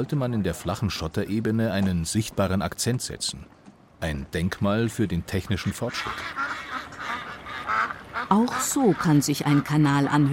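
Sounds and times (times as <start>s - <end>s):
speech: 0.0s - 6.6s, 8.3s - 10.3s
steady outdoor noise: 0.0s - 10.3s
ducks quacking at fish ponds: 5.4s - 10.3s.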